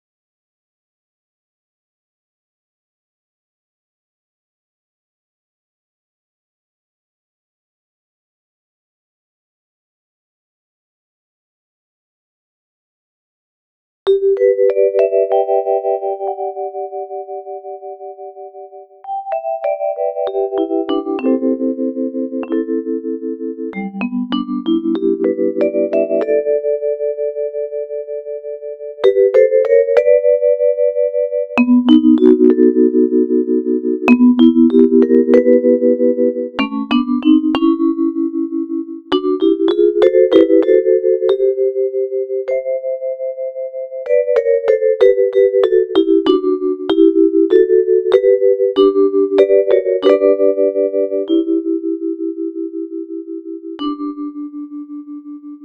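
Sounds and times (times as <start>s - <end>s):
vibraphone fills: 14.1s - 18.3s, 19.0s - 28.2s, 28.9s - 55.6s.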